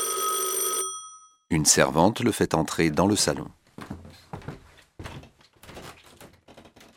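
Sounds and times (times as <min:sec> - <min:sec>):
speech: 0:01.5 - 0:03.6
door opening with wooden thunks and rattling knocks: 0:05.1 - 0:06.9.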